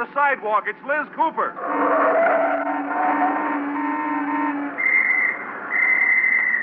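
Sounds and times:
speech: 0:00.0 - 0:03.7
steady droning tone: 0:01.5 - 0:06.6
police officer blowing a whistle: 0:02.0 - 0:06.6.

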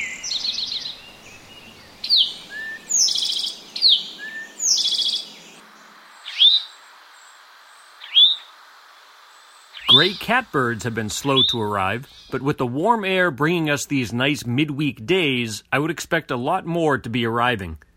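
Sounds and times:
Eastern towhee chewink call notes: 0:00.0 - 0:05.6, 0:06.2 - 0:06.8, 0:08.0 - 0:08.5, 0:09.7 - 0:10.5
Eastern towhee song on territory in Cape Cod oak woodlands: 0:00.0 - 0:12.4
low background noise: 0:00.0 - 0:17.9
speech: 0:10.0 - 0:17.9.

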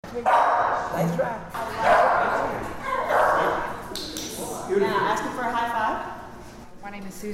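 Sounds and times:
indistinct voices: 0:00.0 - 0:06.3
shelter dogs in a jail dog program barking: 0:00.2 - 0:03.8.

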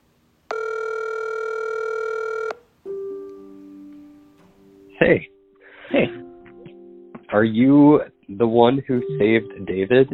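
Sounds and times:
telephone ringback tones on an outgoing call: 0:00.5 - 0:02.6
speech: 0:05.0 - 0:05.3, 0:07.4 - 0:10.1.

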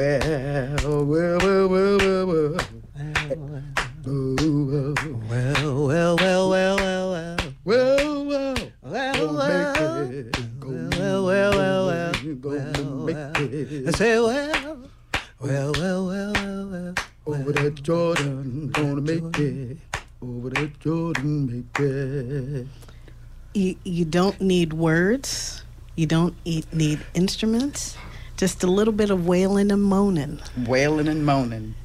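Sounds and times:
speech: 0:00.0 - 0:06.2, 0:24.2 - 0:25.4, 0:26.0 - 0:31.8
rhythmic hand clapping: 0:00.0 - 0:22.2
voices singing a sustained melody: 0:00.0 - 0:22.9.

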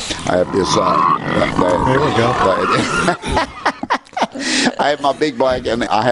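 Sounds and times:
three big heritage breed pigs grunting and snorting while being bathed: 0:00.0 - 0:03.3
speech: 0:00.3 - 0:03.8, 0:04.4 - 0:06.1
laughter: 0:01.7 - 0:05.6.

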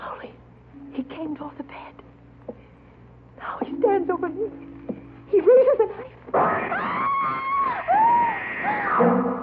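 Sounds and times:
speech: 0:01.0 - 0:02.0, 0:04.0 - 0:04.7
woman screaming in terror with a high-pitched shriek: 0:06.5 - 0:09.0.

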